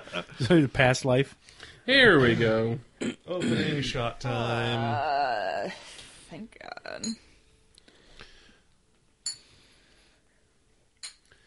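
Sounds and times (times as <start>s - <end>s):
speech: 0.1s - 7.2s
glasses clinking together in a toast: 7.0s - 7.2s, 9.2s - 9.6s, 11.0s - 11.4s.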